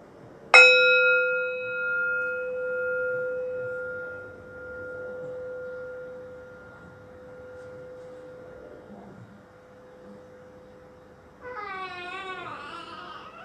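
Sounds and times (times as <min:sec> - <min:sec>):
single bell strike during a breathing meditation: 0:00.6 - 0:08.9.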